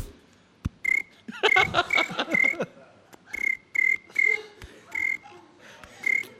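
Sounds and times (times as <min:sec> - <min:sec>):
person imitating cricket chirps with their voice: 0:00.8 - 0:02.6, 0:03.3 - 0:05.2, 0:06.0 - 0:06.3
laughter: 0:01.3 - 0:03.1.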